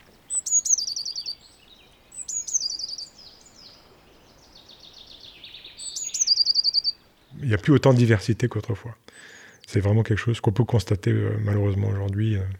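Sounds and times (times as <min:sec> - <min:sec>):
blue tit singing high thin trilling phrases: 0:00.0 - 0:07.9
speech: 0:07.4 - 0:12.5.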